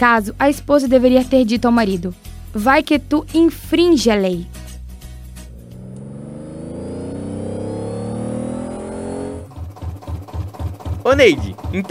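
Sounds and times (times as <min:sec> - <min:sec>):
speech: 0:00.0 - 0:04.6, 0:11.1 - 0:11.8
car engine sputtering and stalling out of gasoline: 0:05.3 - 0:11.8.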